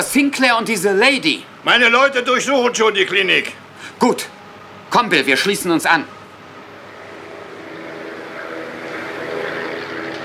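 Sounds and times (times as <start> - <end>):
speech: 0.1 - 6.2
helicopter rotor and engine roar: 6.7 - 10.2.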